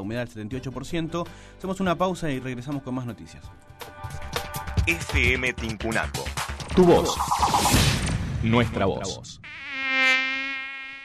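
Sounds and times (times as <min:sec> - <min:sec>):
speech: 0:00.0 - 0:03.9, 0:04.8 - 0:09.6
dengue-transmitting mosquito whining: 0:09.4 - 0:11.0.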